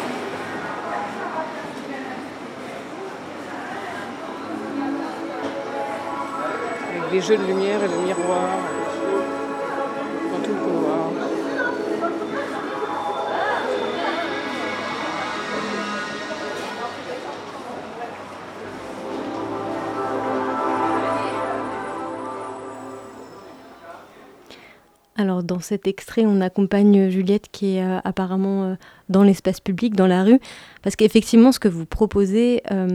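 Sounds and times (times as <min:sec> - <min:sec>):
crowd hubbub in an indoor shopping forum corridor: 0:00.0 - 0:24.5
faint tonal hum: 0:03.2 - 0:24.3
speech: 0:07.1 - 0:08.8, 0:25.2 - 0:32.9.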